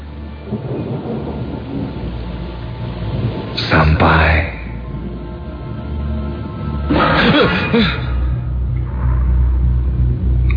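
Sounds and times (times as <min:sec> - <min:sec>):
rain pouring down: 0:00.0 - 0:10.5
speech: 0:07.7 - 0:08.0.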